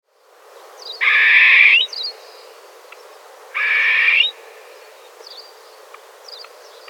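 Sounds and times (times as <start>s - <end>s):
grey partridge harsh rasping grating calls: 3.6s - 4.3s.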